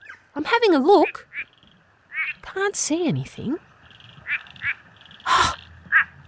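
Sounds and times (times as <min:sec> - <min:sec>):
quiet forest background: 0:00.0 - 0:06.2
speech: 0:00.4 - 0:01.3, 0:02.5 - 0:03.7
nasal quacking frog calls: 0:00.9 - 0:02.4, 0:03.8 - 0:06.2.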